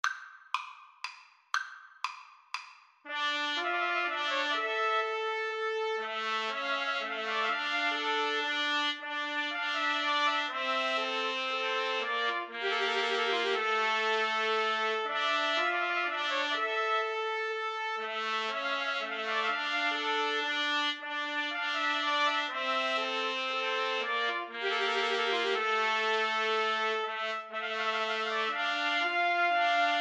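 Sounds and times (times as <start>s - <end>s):
trumpet trio playing a pastorale: 3.1s - 30.0s.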